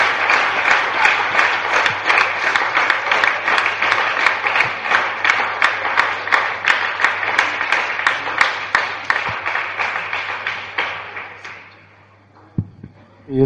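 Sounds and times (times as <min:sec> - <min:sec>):
audience clapping during a Christian worship service: 0:00.0 - 0:12.0.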